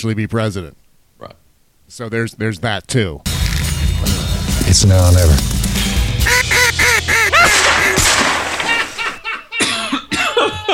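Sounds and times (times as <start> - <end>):
speech: 0.0 - 3.3, 4.0 - 6.5
ducks quacking: 6.2 - 8.2
laughter: 6.3 - 10.7.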